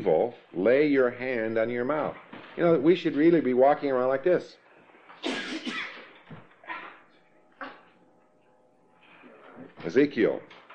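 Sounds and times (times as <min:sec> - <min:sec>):
speech: 0:00.0 - 0:04.6, 0:09.8 - 0:10.6
person sneezing: 0:05.2 - 0:06.1.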